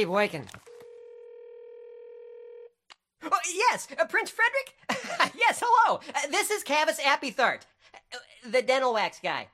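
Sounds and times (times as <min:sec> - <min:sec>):
speech: 0:00.0 - 0:00.6, 0:03.4 - 0:09.5
steady electronic ring tone on a telephone line: 0:00.7 - 0:02.8.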